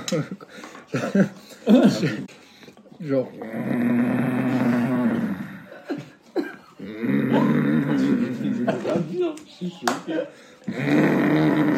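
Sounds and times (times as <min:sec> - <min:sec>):
laughter: 0:00.0 - 0:02.3, 0:07.3 - 0:09.4
speech: 0:00.1 - 0:02.4, 0:03.0 - 0:04.7, 0:07.3 - 0:11.7
voice imitating a father's loud snoring at night in Bamako: 0:03.4 - 0:05.7, 0:06.8 - 0:08.6, 0:10.7 - 0:11.7.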